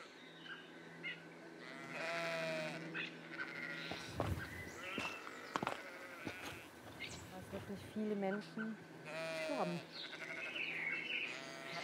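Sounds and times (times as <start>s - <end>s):
sheep bleating on a hiking trail: 1.6s - 7.5s, 9.0s - 11.8s
speech: 8.0s - 8.9s, 9.6s - 10.2s.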